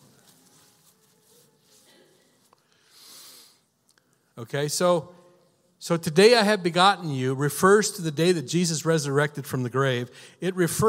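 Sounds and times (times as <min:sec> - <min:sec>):
short airy nasal sniff from a person with a slight sniffle: 0:01.8 - 0:03.6
speech: 0:04.4 - 0:05.2, 0:05.8 - 0:10.8.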